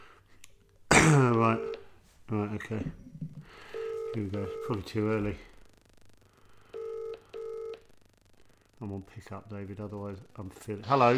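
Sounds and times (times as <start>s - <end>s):
faint low hum: 0.0s - 11.1s
speech: 1.0s - 1.7s, 2.3s - 5.5s, 8.8s - 11.1s
electronic telephone dialing tones: 1.4s - 1.9s, 3.5s - 5.5s, 6.6s - 7.9s.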